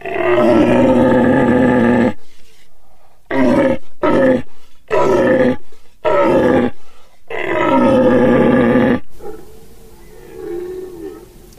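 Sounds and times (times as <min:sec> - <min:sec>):
human voice imitating the threatening roar of a dominant herd stag deer: 0:00.0 - 0:02.2, 0:03.3 - 0:09.1.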